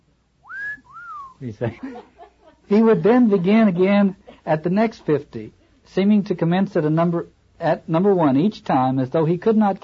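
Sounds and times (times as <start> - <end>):
man's long gurgling whistle of astonishment: 0.4 - 1.4
speech: 1.4 - 9.8
laughter: 1.6 - 4.6.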